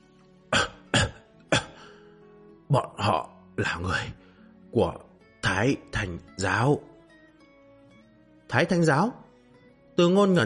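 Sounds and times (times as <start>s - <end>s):
old Taoist priest coughing dryly: 0.6s - 2.0s
speech: 2.7s - 6.9s, 8.5s - 9.2s, 10.0s - 10.4s.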